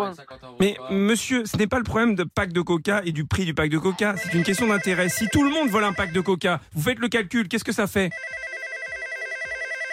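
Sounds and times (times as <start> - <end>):
speech: 0.0 - 8.5
telephone ringing with warbling electronic trill: 4.2 - 6.3, 8.1 - 9.9.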